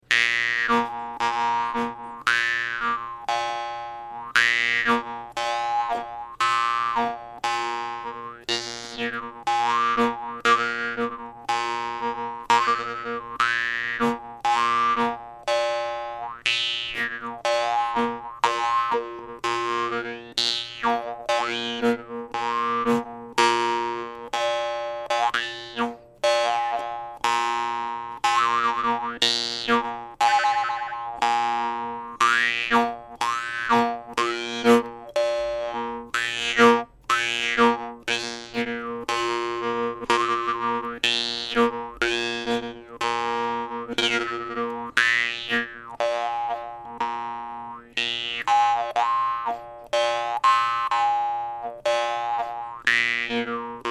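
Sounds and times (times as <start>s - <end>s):
high jaw harp vargan: 0.0s - 53.8s.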